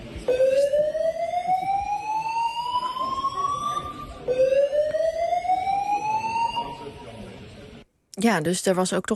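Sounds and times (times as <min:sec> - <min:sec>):
evacuation announcement: 0:00.2 - 0:07.3
building fire alarm whooping: 0:00.3 - 0:07.1
speech: 0:08.2 - 0:09.1.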